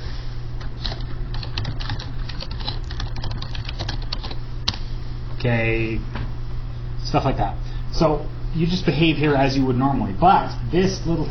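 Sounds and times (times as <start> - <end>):
typing on a computer keyboard: 0.8 - 4.4
speech: 5.4 - 6.2, 7.1 - 11.2.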